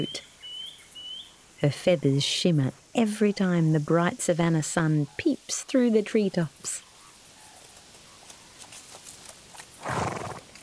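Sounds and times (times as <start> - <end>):
speech: 0.0 - 0.3, 1.6 - 6.8
faint rustle: 6.6 - 10.6
wild horse neighing with a harsh wavering whinny: 9.8 - 10.5.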